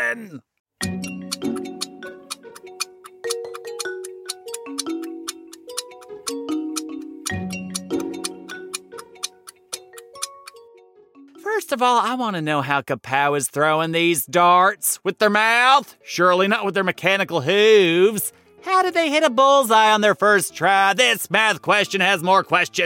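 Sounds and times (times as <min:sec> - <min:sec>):
speech: 0:00.1 - 0:01.1, 0:11.7 - 0:22.8
tense looping music bed: 0:00.8 - 0:11.7
countdown clock ticking for a math puzzle: 0:01.0 - 0:10.7.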